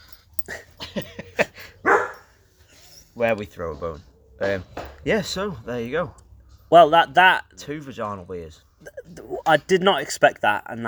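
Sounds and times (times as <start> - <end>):
speech: 0.5 - 1.2, 3.2 - 10.8
female dog barking and yapping: 1.8 - 2.3.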